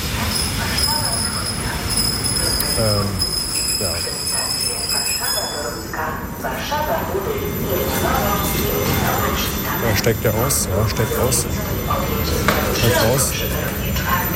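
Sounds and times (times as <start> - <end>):
commuter train rumbling at a station platform: 0.0 - 14.3
high metallic squeals of a commuter train: 0.2 - 6.2
speech: 3.8 - 4.1, 10.0 - 13.8.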